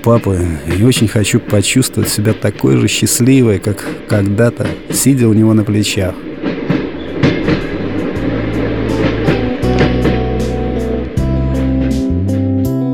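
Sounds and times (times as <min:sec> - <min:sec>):
speech: 0:00.0 - 0:06.3
train wheels clattering on rails inside a moving passenger carriage: 0:00.0 - 0:12.3
loud constant low train rumble: 0:06.2 - 0:12.3.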